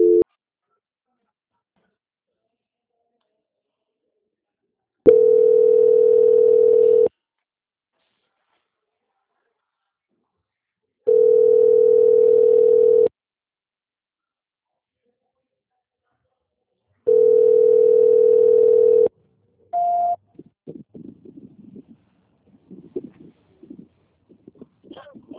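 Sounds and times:
telephone line tones while a call is being transferred: 0.0s - 0.2s, 5.1s - 7.1s, 11.1s - 13.1s, 17.1s - 19.1s.

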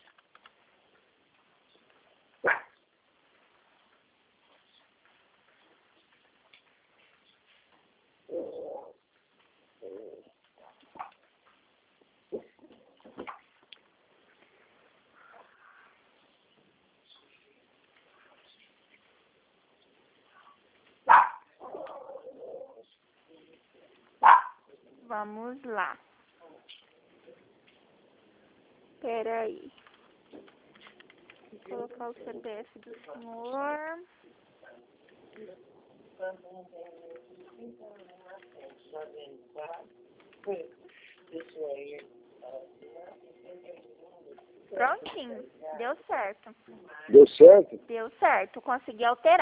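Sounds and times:
small female dog yapping over a phone-like line: 2.4s - 2.8s, 21.0s - 22.8s, 24.2s - 24.6s
speech: 25.1s - 26.1s, 29.0s - 29.8s, 31.7s - 34.2s, 35.4s - 43.8s, 44.7s - 49.3s.

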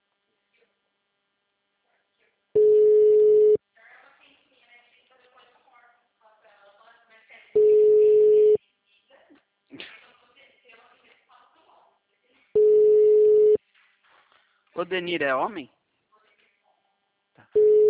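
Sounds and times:
unanswered outgoing call telephone ringing tone: 2.6s - 3.6s, 7.6s - 8.6s, 12.6s - 13.6s, 17.6s - 17.8s
speech: 14.8s - 15.8s.

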